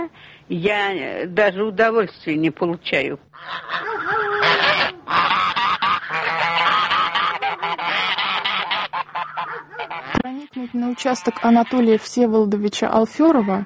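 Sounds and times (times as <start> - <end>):
speech: 0.0 - 5.2, 10.6 - 13.6
flock of geese honking: 3.4 - 12.2.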